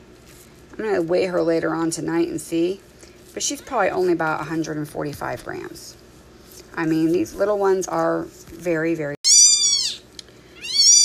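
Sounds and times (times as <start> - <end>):
speech: 0.8 - 6.0, 6.8 - 9.2
tiny female kitten meowing in a hand: 9.3 - 10.0, 10.6 - 11.0.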